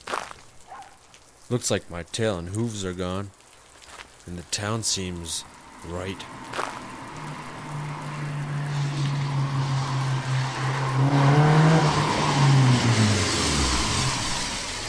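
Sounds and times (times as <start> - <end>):
speech: 1.5 - 3.4, 4.2 - 6.6
car engine pulling up and rolling to a stop: 5.3 - 14.8.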